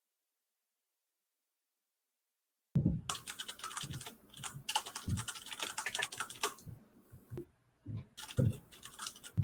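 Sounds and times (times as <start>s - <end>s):
rapid clattering keystrokes on a computer keyboard: 3.1s - 6.6s, 8.2s - 9.4s.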